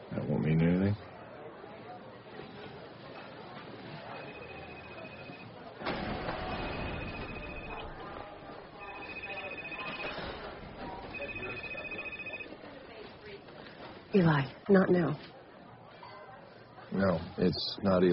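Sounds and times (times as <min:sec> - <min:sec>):
phone ringing tone while a call connects on a borrowed phone: 0:04.0 - 0:08.2, 0:08.8 - 0:12.6
speech: 0:14.2 - 0:15.3, 0:17.0 - 0:18.1.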